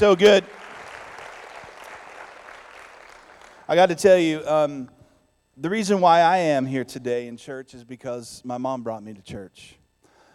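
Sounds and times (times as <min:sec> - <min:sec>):
speech: 0:00.0 - 0:00.7, 0:03.7 - 0:05.0, 0:05.6 - 0:09.8
crowd applause: 0:00.0 - 0:04.1.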